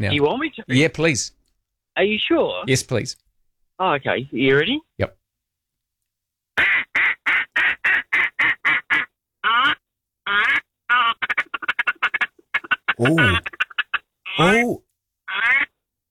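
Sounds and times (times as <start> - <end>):
speech: 0.0 - 1.4, 2.0 - 3.2, 3.8 - 5.2, 13.0 - 13.6, 14.4 - 14.8
duck call blown in quick bursts to call ducks: 6.6 - 14.0, 15.3 - 15.7.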